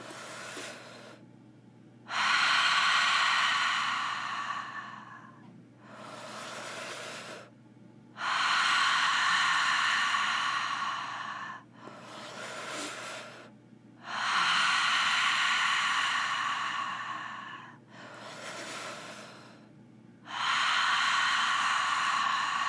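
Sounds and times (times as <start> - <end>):
slow deep breaths through the mouth during a guided breathing exercise: 0.0 - 1.2, 2.1 - 7.5, 8.2 - 19.7, 20.3 - 22.6.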